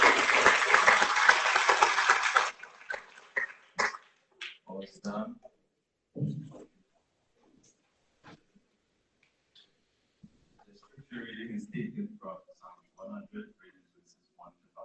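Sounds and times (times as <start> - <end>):
audience applause at a school graduation ceremony: 0.0 - 4.0
short bursts of speech: 4.7 - 5.5, 10.6 - 14.8.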